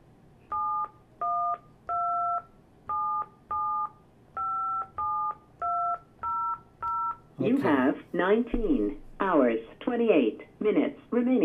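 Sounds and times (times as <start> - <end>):
telephone keypad tones: 0.5 - 7.3
speech: 7.4 - 11.4.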